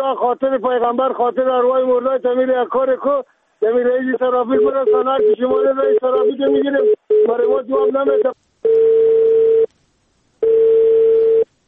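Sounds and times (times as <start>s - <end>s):
speech: 0.0s - 8.9s
telephone tone after a call is cut off: 4.5s - 9.7s, 10.4s - 11.5s.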